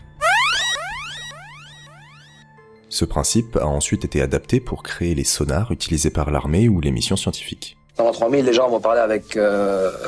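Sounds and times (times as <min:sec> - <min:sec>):
steady low electronic hum: 0:00.0 - 0:02.4
synthetic video game dolphin echolocation chirps: 0:00.0 - 0:02.4
speech: 0:02.9 - 0:10.0.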